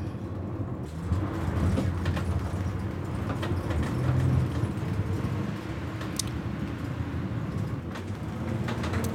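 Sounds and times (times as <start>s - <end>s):
ambulance engine low rumble in heavy traffic: 0.0s - 9.1s
road noise: 0.0s - 9.1s
knocks and clatters: 0.9s - 6.3s, 7.5s - 9.1s.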